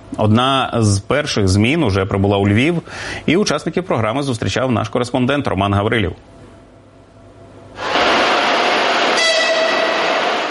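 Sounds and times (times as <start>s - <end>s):
speech: 0.2s - 6.4s
passenger train pulling into Lviv railway station platform: 7.8s - 10.4s.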